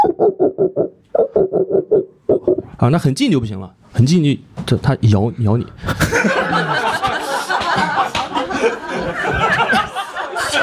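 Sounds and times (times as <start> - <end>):
human voice imitating a dog barking: 0.0 - 2.8
speech: 2.8 - 6.4
laughter: 5.9 - 10.6.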